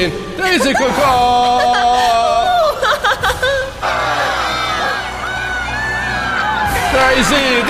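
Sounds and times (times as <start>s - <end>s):
speech: 0.0s - 2.2s, 7.0s - 7.6s
laughter: 0.4s - 5.6s
crowd cheering and whooping for a competitor at the world games: 0.7s - 7.6s
high shouts: 3.8s - 7.6s.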